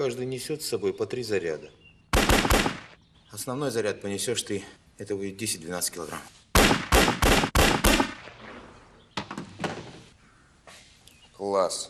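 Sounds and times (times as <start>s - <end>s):
speech: 0.0s - 1.8s, 3.4s - 7.4s, 11.5s - 11.8s
gunshots: 2.1s - 3.0s, 6.6s - 8.7s.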